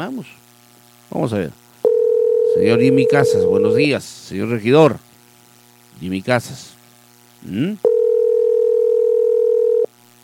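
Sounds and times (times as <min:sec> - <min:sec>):
speech: 0:00.0 - 0:00.5, 0:01.1 - 0:01.6, 0:02.6 - 0:05.1, 0:06.0 - 0:06.8, 0:07.4 - 0:08.0
telephone ringback tone on an unanswered call: 0:01.8 - 0:03.8, 0:07.8 - 0:09.9.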